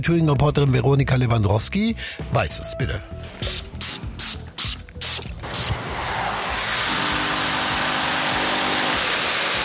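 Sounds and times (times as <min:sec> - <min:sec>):
speech: 0:00.0 - 0:04.4
spraying upholstery: 0:03.4 - 0:09.6
steam vacuum: 0:05.0 - 0:09.6.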